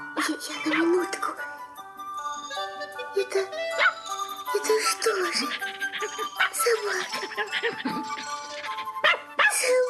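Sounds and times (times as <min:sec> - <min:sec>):
speech: 0:00.3 - 0:01.5, 0:03.2 - 0:08.4
small dog yipping and barking: 0:03.7 - 0:04.0, 0:05.3 - 0:09.7.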